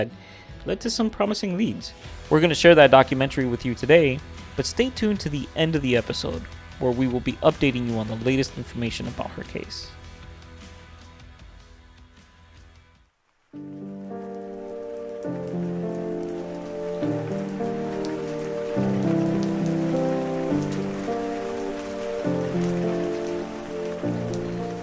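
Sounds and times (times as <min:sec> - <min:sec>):
speech: 0:00.0 - 0:10.0
steady rain falling: 0:00.6 - 0:09.4, 0:13.0 - 0:24.8
slow sustained musical chords: 0:13.7 - 0:24.8.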